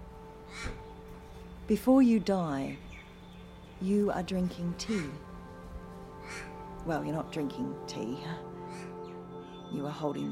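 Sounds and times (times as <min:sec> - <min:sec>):
crow cawing: 0:00.3 - 0:01.0, 0:06.0 - 0:06.8, 0:08.5 - 0:09.2
speech: 0:01.7 - 0:02.9, 0:03.8 - 0:05.3, 0:06.4 - 0:08.9, 0:09.7 - 0:10.3.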